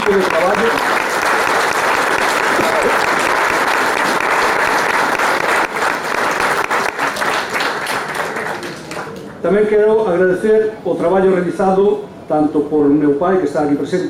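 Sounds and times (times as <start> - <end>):
large crowd audience applause: 0.0 - 9.4
speech: 0.1 - 1.0, 9.4 - 14.0.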